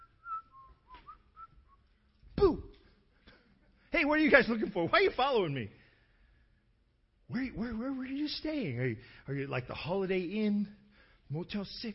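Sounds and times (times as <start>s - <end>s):
person whistling a short wandering tune: 0.0s - 1.8s
speech: 4.0s - 5.8s, 7.3s - 11.9s.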